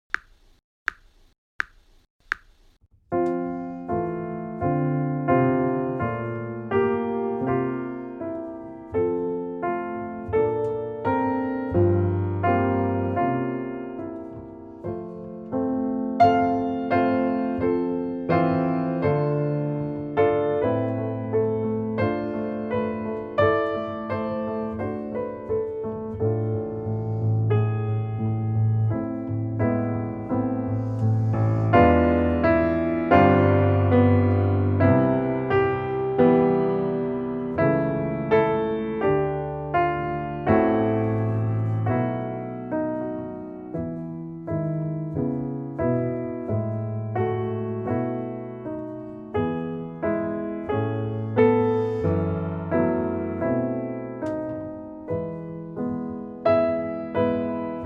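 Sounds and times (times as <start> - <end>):
piano piece: 3.1 - 57.8.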